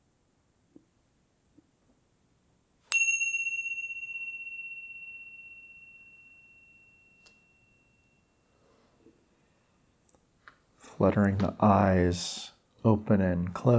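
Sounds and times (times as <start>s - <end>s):
single bell struck in a closing practice: 2.9s - 8.4s
speech: 11.0s - 13.7s.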